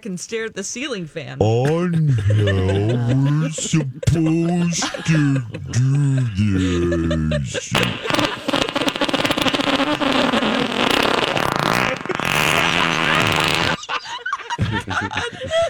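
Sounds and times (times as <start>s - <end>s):
speech: 0.0s - 8.4s
laughter: 1.4s - 8.9s, 10.0s - 15.6s
long buzzy fart with sputtering bursts: 7.8s - 13.8s.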